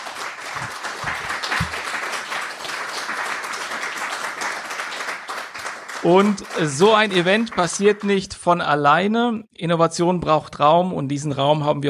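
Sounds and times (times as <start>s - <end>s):
crowd applause: 0.0s - 8.2s
speech: 6.0s - 11.8s.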